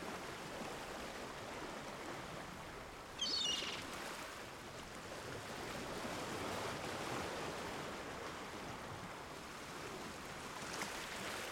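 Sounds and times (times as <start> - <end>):
sea surf: 0.0 - 11.5
gull call: 3.2 - 3.9.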